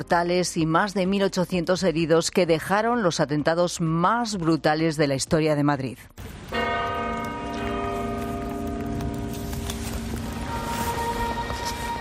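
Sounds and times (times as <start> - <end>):
speech: 0.0 - 6.4
faint footsteps: 6.2 - 11.9
outdoor street ambience: 6.2 - 11.9
church bells ringing: 6.5 - 11.9.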